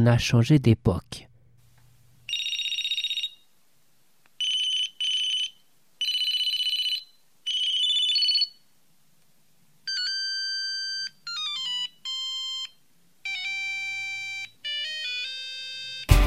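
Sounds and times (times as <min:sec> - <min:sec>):
speech: 0:00.0 - 0:01.3
Sony Ericsson T68i mobile phone ringtone: 0:02.3 - 0:03.4, 0:04.4 - 0:08.6, 0:09.9 - 0:16.1.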